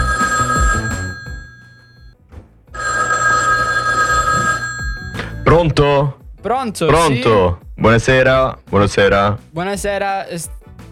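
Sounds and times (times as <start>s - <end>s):
telephone ringing tone of an outgoing call: 0.0s - 2.2s, 2.8s - 5.6s
speech: 5.6s - 10.6s.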